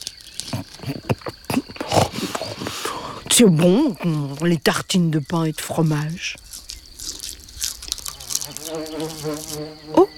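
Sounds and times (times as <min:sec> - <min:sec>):
small clicks and light crunchy sounds of eating: 0:00.0 - 0:10.1
speech: 0:03.4 - 0:06.4, 0:08.7 - 0:10.1
fly buzzing around a slice of bread with cheese at a picnic: 0:06.5 - 0:10.1.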